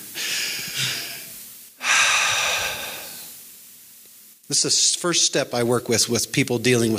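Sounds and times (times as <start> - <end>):
slow deep breaths as a calming exercise for anxiety: 0.1 - 3.4
speech: 4.5 - 6.9.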